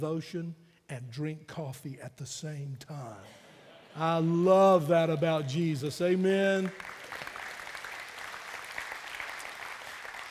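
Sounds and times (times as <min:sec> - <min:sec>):
speech: 0:00.0 - 0:03.4, 0:04.0 - 0:07.2
crowd applauding: 0:06.0 - 0:10.2.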